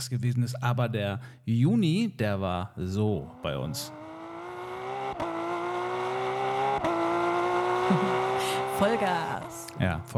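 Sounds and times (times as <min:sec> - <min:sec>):
speech: 0:00.0 - 0:04.0, 0:07.9 - 0:08.2, 0:08.8 - 0:10.1
car engine revving at full throttle with gear changes: 0:02.9 - 0:10.1
laughter: 0:07.9 - 0:08.4.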